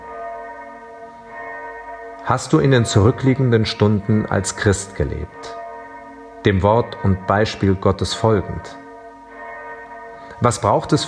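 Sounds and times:
church bell ringing: 0.0 - 11.0
speech: 2.3 - 5.6, 6.4 - 8.8, 10.4 - 11.0.

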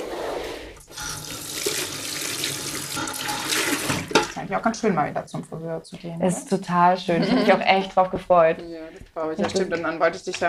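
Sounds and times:
water running from a tap into a hair-washing sink at a hair salon: 0.8 - 4.4
speech: 4.5 - 10.4.

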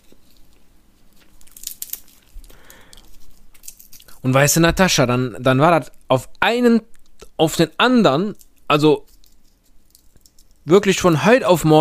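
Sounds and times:
peanuts in their shells being cracked open: 0.0 - 4.2, 6.9 - 7.4, 8.3 - 10.7
rustling bursts: 0.0 - 4.3, 8.3 - 10.7
speech: 4.2 - 9.1, 10.6 - 11.7.

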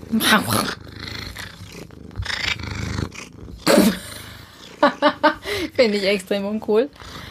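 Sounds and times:
person imitating a cat purr: 0.0 - 7.2
speech: 0.1 - 0.8, 5.8 - 7.2
laughter: 4.8 - 5.6.

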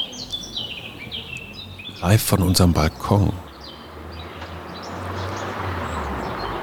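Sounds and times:
Eurasian blackcap singing warbling phrases outdoors: 0.0 - 5.5
car driving along the street with a low rumble: 0.5 - 6.6
speech: 2.0 - 3.5.

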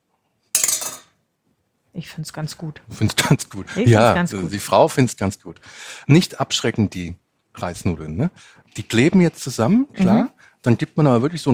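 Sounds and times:
utensils clinking on a dish serving rice noodles onto a plate: 0.6 - 1.1
speech: 2.0 - 11.5.

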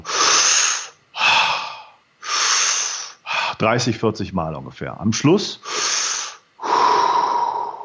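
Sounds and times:
deep inhaling and relaxed exhaling breathing technique: 0.0 - 3.6, 5.6 - 7.8
speech: 3.6 - 5.7.

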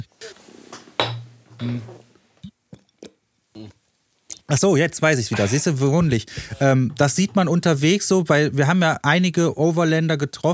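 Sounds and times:
glasses clinking in a toast: 1.0 - 1.8
speech: 1.6 - 2.1, 4.5 - 10.5.

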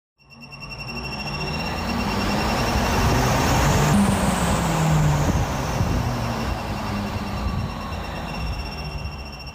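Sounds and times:
shrill sustained squeaking whine: 0.2 - 9.5
loud steady rumble of a passing vehicle: 0.5 - 9.5.

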